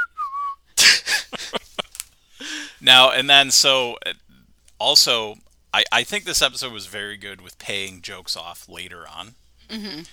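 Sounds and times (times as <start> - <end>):
person whistling a short casual phrase: 0.0 - 0.6
loud breathy bursts of noise: 2.2 - 2.9
speech: 2.8 - 4.2, 4.8 - 10.1.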